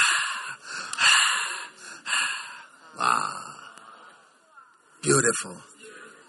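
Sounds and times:
heavy excited gasping breaths: 0:00.0 - 0:03.6
speech: 0:05.0 - 0:05.8.

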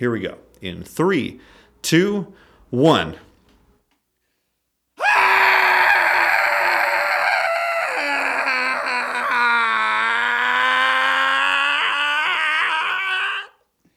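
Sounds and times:
speech: 0:00.0 - 0:03.3
several voices in a cathartic group yell: 0:05.0 - 0:13.6.

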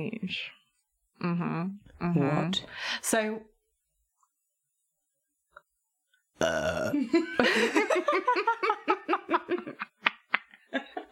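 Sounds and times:
speech: 0:00.0 - 0:00.6, 0:01.2 - 0:03.5, 0:06.4 - 0:09.8
person burping away from the microphone: 0:06.4 - 0:07.1
laughter: 0:07.0 - 0:11.1.

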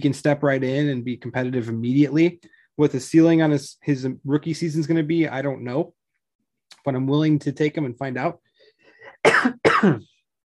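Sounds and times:
speech: 0:00.0 - 0:06.0, 0:06.8 - 0:08.4, 0:09.2 - 0:10.1
harsh coughs: 0:09.0 - 0:10.2
throat clearing: 0:09.1 - 0:10.2.

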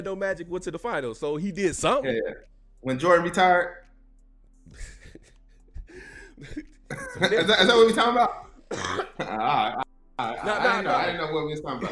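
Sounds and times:
speech: 0:00.0 - 0:03.9, 0:06.0 - 0:11.9
man coughing: 0:08.7 - 0:09.8.

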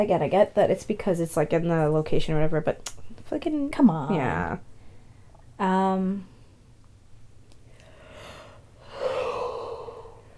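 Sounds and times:
speech: 0:00.0 - 0:04.7, 0:05.6 - 0:06.3
person yawning: 0:08.8 - 0:10.2.

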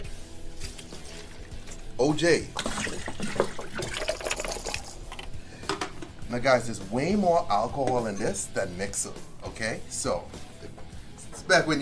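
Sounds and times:
juice splashing and gurgling poured into a punch: 0:00.5 - 0:05.4
speech: 0:02.0 - 0:02.7, 0:06.3 - 0:10.4, 0:11.5 - 0:11.7.

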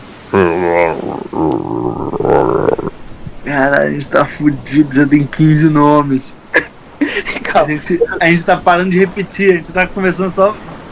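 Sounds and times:
speech: 0:00.3 - 0:00.8, 0:03.6 - 0:06.4, 0:07.5 - 0:10.9
person vocally imitating a hungry growling stomach: 0:00.3 - 0:03.4
laughter: 0:06.5 - 0:08.4.

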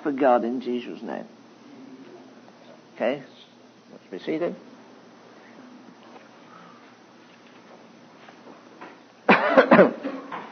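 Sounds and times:
speech: 0:00.0 - 0:01.4, 0:03.0 - 0:04.7, 0:09.8 - 0:10.0
audience members coughing in a large room: 0:09.3 - 0:10.4.

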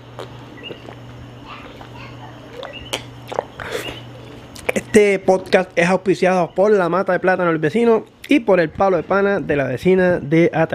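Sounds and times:
mouth clicks: 0:00.0 - 0:05.8
slurping: 0:00.0 - 0:05.8
low hum: 0:00.0 - 0:10.3
sipping coffee from a cup: 0:01.7 - 0:04.9
speech: 0:05.0 - 0:10.7.

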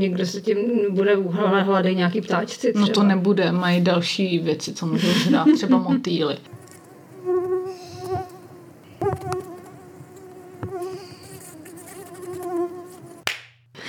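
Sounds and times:
speech: 0:00.0 - 0:06.6
laughter: 0:05.0 - 0:06.0
mosquito buzzing: 0:06.5 - 0:13.2.

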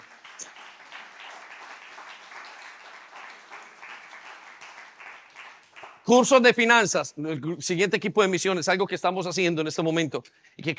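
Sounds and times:
large crowd applauding during a religious gathering: 0:00.0 - 0:06.4
speech: 0:06.1 - 0:10.7.

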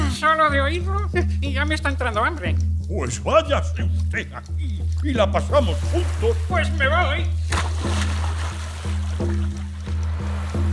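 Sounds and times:
speech: 0:00.3 - 0:08.1
rushing sloshing water: 0:04.8 - 0:10.7
man going overboard splashing into water: 0:05.8 - 0:06.5, 0:07.4 - 0:10.7.

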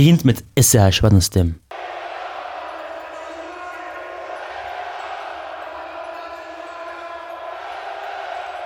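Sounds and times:
speech: 0:00.0 - 0:02.0
large stadium crowd roaring and cheering: 0:01.7 - 0:08.6.

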